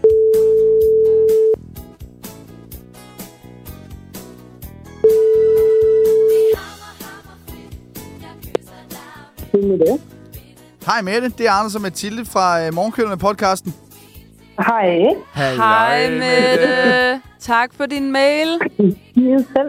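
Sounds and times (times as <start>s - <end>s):
telephone ringback tone during an outgoing call: 0.0s - 1.6s, 5.0s - 6.6s
busy music: 0.0s - 19.6s
speech: 9.7s - 10.1s, 10.9s - 13.8s, 14.6s - 19.6s
laughter: 15.3s - 17.2s.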